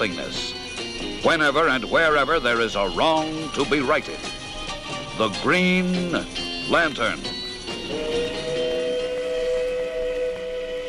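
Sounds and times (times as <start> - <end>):
speech: 0.0 - 0.6, 1.2 - 4.3, 5.2 - 7.3
moving steam train hissing and rumbling over a newly constructed trestle bridge: 0.0 - 10.8
steam train whistle blast: 7.8 - 10.8.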